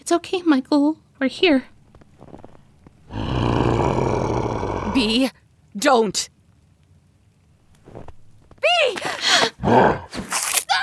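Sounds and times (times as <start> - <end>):
speech: 0.1 - 2.3, 5.0 - 6.4, 8.6 - 10.4
wolf growling and roaring: 1.4 - 5.2, 7.7 - 8.6, 9.6 - 10.2.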